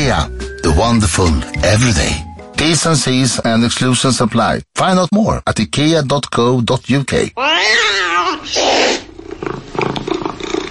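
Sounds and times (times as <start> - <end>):
speech: 0.1 - 9.9
cat meowing: 7.4 - 9.1
cat hissing: 7.4 - 10.6.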